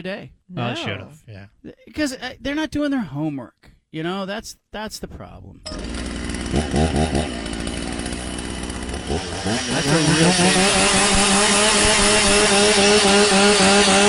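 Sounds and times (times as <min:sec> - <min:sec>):
speech: 0:00.0 - 0:07.4, 0:09.1 - 0:14.0
crowd noise in a stadium: 0:00.6 - 0:01.3
chainsaw revving in a stadium: 0:05.7 - 0:14.0.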